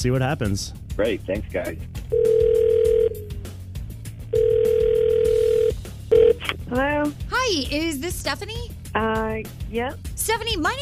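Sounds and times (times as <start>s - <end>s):
speech: 0.0s - 2.5s, 6.7s - 10.8s
telephone ringback tone on an outgoing call: 2.2s - 3.3s, 4.4s - 6.4s.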